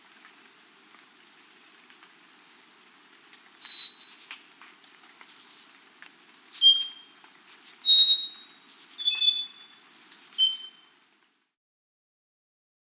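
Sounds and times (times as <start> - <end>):
Andean solitaire song of flute-like whistles: 2.2 - 4.6, 5.2 - 11.0.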